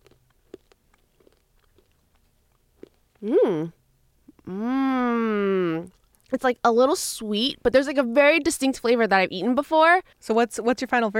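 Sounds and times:
chewing crunchy sweet savory snack: 0.0 - 3.3
speech: 3.2 - 3.8, 4.5 - 4.8, 6.3 - 11.1.

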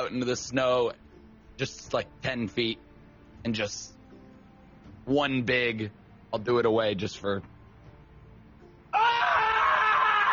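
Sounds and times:
speech: 0.1 - 1.0, 1.6 - 2.8, 3.4 - 4.0, 5.1 - 7.5
person imitating an anguished scream: 8.9 - 10.3.

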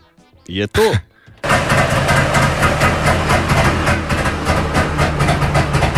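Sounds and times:
laughter: 0.0 - 5.9
speech: 0.5 - 1.1
old Ford car engine starting and running: 1.2 - 5.9.

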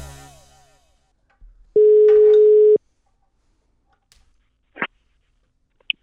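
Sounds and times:
electronic outgoing phone call ring tone: 1.8 - 2.8.

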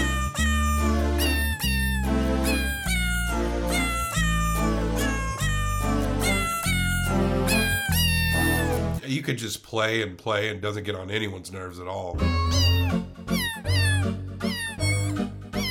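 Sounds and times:
bouncy backing track with a thumping bass line: 0.0 - 9.0, 12.2 - 15.6
cat meows pitched into a cheerful Christmas melody: 0.0 - 9.0, 12.2 - 15.6
speech: 9.3 - 13.1.

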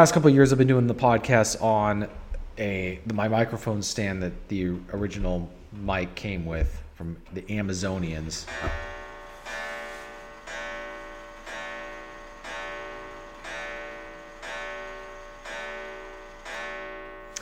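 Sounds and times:
speech: 0.0 - 8.9
antique clock ticking: 7.2 - 17.4.

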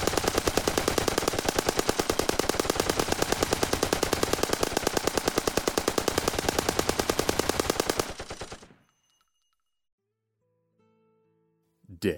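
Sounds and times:
machine gun fire: 0.0 - 8.8.

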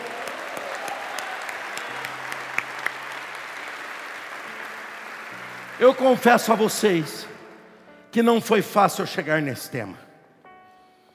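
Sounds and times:
sustained audience applause: 0.0 - 6.8
speech: 5.8 - 7.3, 8.1 - 10.0.

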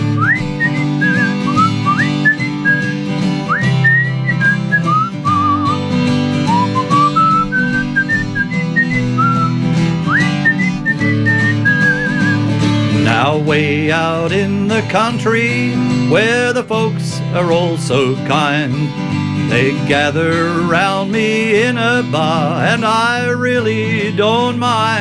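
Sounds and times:
person whistling a tune: 0.0 - 12.5
steady instrumental backing: 0.0 - 24.9
speech: 13.5 - 24.9.

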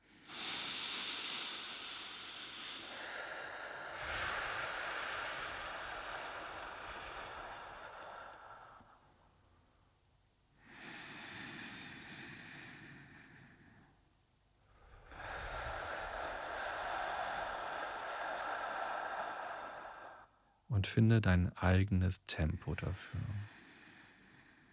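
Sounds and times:
loud ocean-breath breathing in through nose and out mouth: 0.0 - 9.4, 10.6 - 14.0, 14.6 - 20.7
speech: 20.8 - 23.6.

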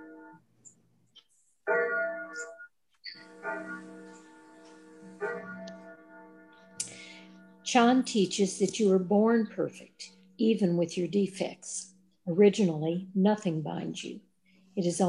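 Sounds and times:
clock chiming: 1.7 - 13.2
speech: 7.7 - 15.0.

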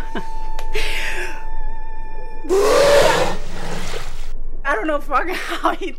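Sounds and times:
whale trumpeting through its blowhole: 2.5 - 4.3
speech: 4.8 - 5.9.

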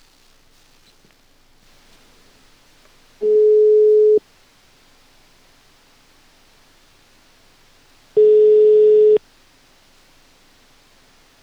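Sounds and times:
faint hiss: 0.0 - 11.4
telephone busy tone after a dropped call: 3.2 - 4.2, 8.2 - 9.2.

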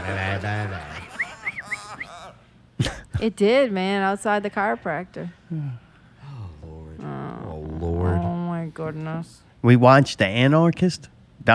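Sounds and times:
laughter: 0.0 - 2.5
person imitating a bird call: 1.2 - 2.4
speech: 3.2 - 5.8, 8.7 - 11.5.

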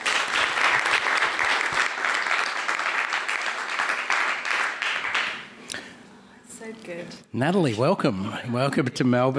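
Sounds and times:
audience applause: 0.0 - 5.5
speech: 6.9 - 9.3.

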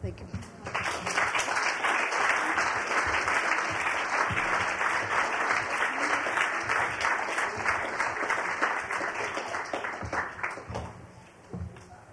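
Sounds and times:
crowd applauding: 0.4 - 11.1.

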